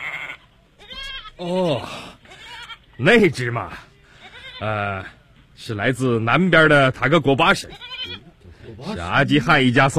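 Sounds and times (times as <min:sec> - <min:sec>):
goat in a herd bleating in wavering nasal cries: 0:00.0 - 0:01.4, 0:02.2 - 0:03.0, 0:04.2 - 0:05.2, 0:07.6 - 0:08.4
speech: 0:01.4 - 0:02.1, 0:03.0 - 0:03.9, 0:04.6 - 0:09.9.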